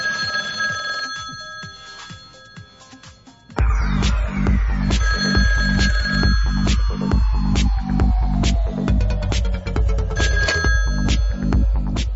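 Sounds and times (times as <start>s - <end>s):
home landline telephone ringing with a bright electronic trill: 0.0s - 3.6s, 5.0s - 6.7s, 10.2s - 11.4s
pulsing backing track: 1.2s - 12.1s
descending tone sweep: 3.6s - 12.0s.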